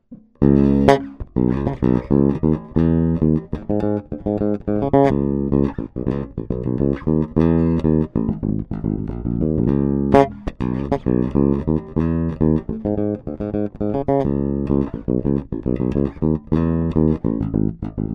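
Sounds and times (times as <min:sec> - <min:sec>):
bass guitar with active mid: 0:00.0 - 0:18.1.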